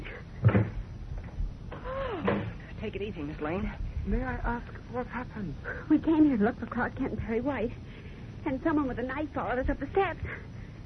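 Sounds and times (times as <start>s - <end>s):
door creaking shut: 0.4s - 0.8s, 2.2s - 2.6s
speech: 2.9s - 10.6s.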